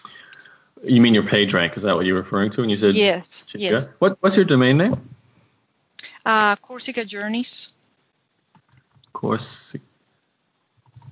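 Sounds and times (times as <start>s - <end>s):
speech: 0.8s - 5.1s, 6.2s - 7.8s, 9.2s - 9.9s
typing on a computer keyboard: 8.5s - 9.2s, 10.8s - 11.1s.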